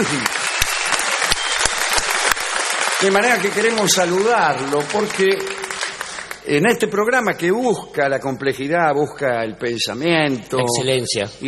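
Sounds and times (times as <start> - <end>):
speech: 0.0 - 0.4, 3.0 - 5.6, 6.4 - 11.4
audience applause honoring a retired football player: 0.0 - 6.4.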